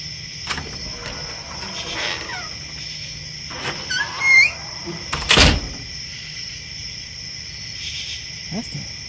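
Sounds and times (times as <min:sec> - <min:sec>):
chorus of crickets and insects in the night air: 0:00.0 - 0:09.0
back door of a house opening at night with creaks: 0:00.5 - 0:06.1.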